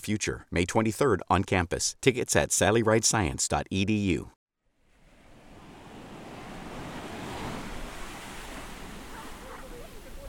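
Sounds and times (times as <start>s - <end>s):
speech: 0.0s - 4.4s
ocean surf waves breaking: 4.8s - 10.2s.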